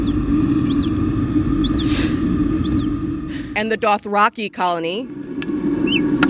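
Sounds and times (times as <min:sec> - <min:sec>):
naked mole rat soft chirps from a lab colony: 0:00.0 - 0:01.0, 0:01.6 - 0:02.9, 0:05.8 - 0:06.0
steady low hum: 0:00.0 - 0:06.2
speech: 0:03.6 - 0:05.2.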